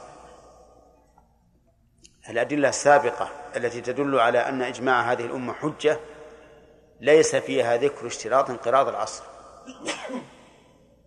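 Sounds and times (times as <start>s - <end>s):
speech: 2.3s - 6.2s, 7.0s - 10.4s
person sneezing: 9.6s - 10.4s.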